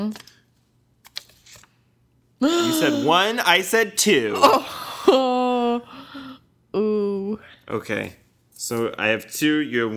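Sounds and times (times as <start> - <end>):
speech: 0.0 - 0.3, 2.4 - 9.9
paper rustle: 1.0 - 1.8.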